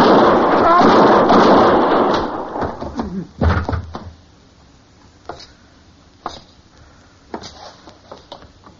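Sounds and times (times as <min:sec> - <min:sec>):
gunshots in a western radio drama: 0:00.0 - 0:03.7.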